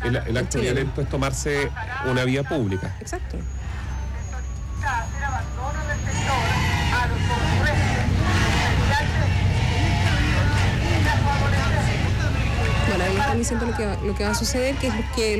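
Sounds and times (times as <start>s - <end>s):
speech: 0.0s - 3.8s, 13.3s - 15.3s
crowd murmuring: 0.0s - 15.3s
heavy police water cannon truck engine drone in Santiago: 0.0s - 15.3s
voices calling out: 0.0s - 15.3s.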